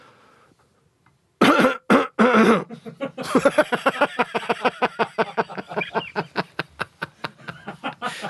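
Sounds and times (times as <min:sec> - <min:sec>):
person coughing deliberately in rhythmic bursts: 0:01.4 - 0:02.7
laughter: 0:02.7 - 0:08.2.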